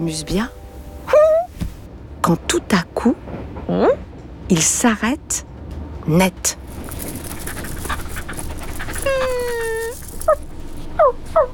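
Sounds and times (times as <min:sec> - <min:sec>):
speech: 0:00.0 - 0:00.6, 0:02.3 - 0:05.5, 0:06.1 - 0:06.6
steady hiss: 0:00.0 - 0:11.5
small brown puppy whimpering: 0:07.6 - 0:11.5.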